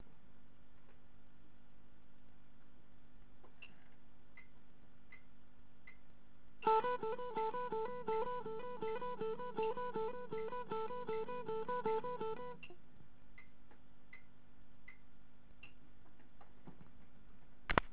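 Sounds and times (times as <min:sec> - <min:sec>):
guitar alternate picking: 0:06.6 - 0:12.8.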